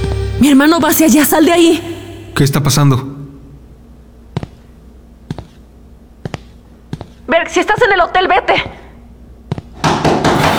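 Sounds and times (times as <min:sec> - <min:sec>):
speech: 0:00.4 - 0:03.2, 0:07.3 - 0:08.8
heavy loud pounding on a door: 0:09.8 - 0:10.5.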